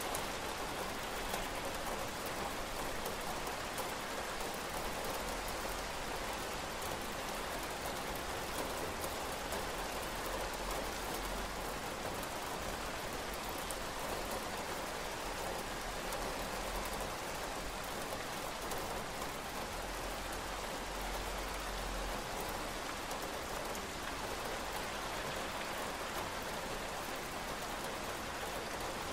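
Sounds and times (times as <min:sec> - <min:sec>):
heavy rain: 0:00.0 - 0:29.1.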